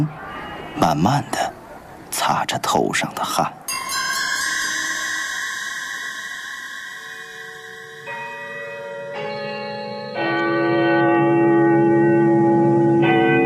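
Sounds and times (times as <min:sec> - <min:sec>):
speech: 0:00.8 - 0:04.2
clock tower bell tolling: 0:03.7 - 0:13.4.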